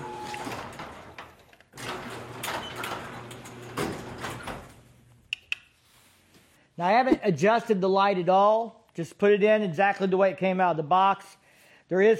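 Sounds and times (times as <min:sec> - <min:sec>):
motorized garage door opening: 0:00.0 - 0:05.1
speech: 0:06.8 - 0:12.1.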